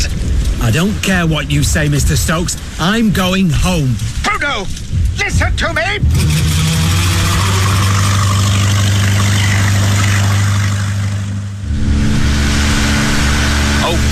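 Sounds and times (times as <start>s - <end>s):
speech: 0.7s - 6.6s
boat engine running: 6.0s - 14.1s.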